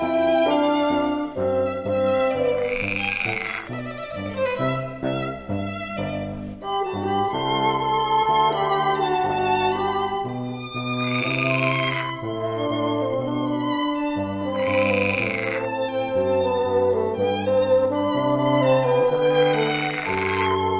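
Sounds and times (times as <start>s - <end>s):
orchestral-sounding instrumental music: 0.0s - 20.7s
frogs croaking: 2.1s - 4.5s, 10.9s - 12.2s, 14.4s - 15.9s, 19.2s - 20.7s.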